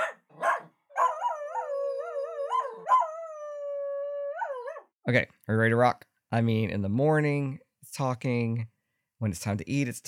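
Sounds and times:
miniature schnauzer barking sharply: 0:00.0 - 0:01.6, 0:02.5 - 0:03.1
miniature schnauzer howling: 0:00.0 - 0:04.9
speech: 0:05.0 - 0:10.0.

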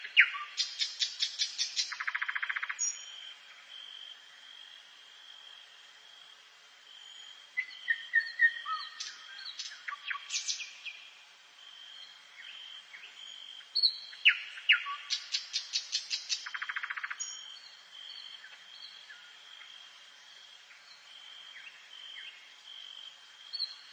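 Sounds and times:
birds singing in a forest: 0:00.0 - 0:03.2, 0:07.0 - 0:11.1, 0:11.9 - 0:19.7
high insect hum: 0:00.0 - 0:23.9.

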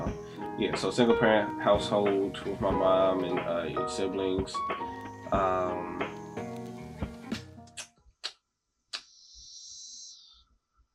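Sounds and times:
speech: 0:00.6 - 0:06.2
cicadas buzzing outdoors: 0:01.7 - 0:07.3, 0:09.0 - 0:10.5.

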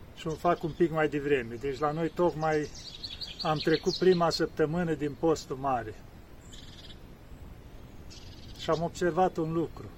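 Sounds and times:
outdoor noise: 0:00.0 - 0:09.9
speech: 0:00.2 - 0:06.6, 0:08.7 - 0:09.9
high-pitched bird calls outdoors: 0:01.7 - 0:04.5, 0:06.4 - 0:07.1, 0:08.0 - 0:09.0.

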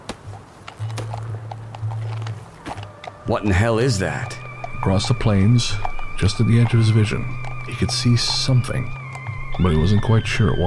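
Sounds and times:
ridden horse's hooves clip-clopping at a walk across the plains: 0:00.0 - 0:10.6
speech: 0:03.3 - 0:09.0, 0:09.6 - 0:10.6
low steady drone: 0:03.3 - 0:10.6.

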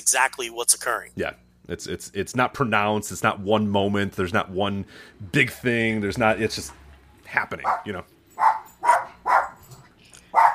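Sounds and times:
speech: 0:00.0 - 0:08.5
dog barking: 0:07.6 - 0:09.7, 0:10.3 - 0:10.5.

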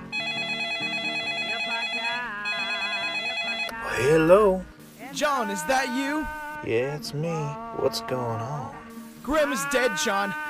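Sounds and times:
telephone ringing with a buzzy electronic tone: 0:00.0 - 0:03.8
speech: 0:04.0 - 0:10.4.

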